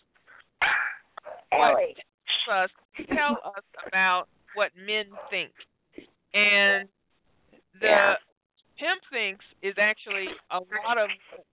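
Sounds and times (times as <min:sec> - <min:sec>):
dog barking: 0:00.6 - 0:01.6, 0:05.1 - 0:05.5
dog yelping: 0:00.6 - 0:01.8
speech: 0:01.6 - 0:05.7, 0:06.3 - 0:07.0, 0:07.8 - 0:11.5.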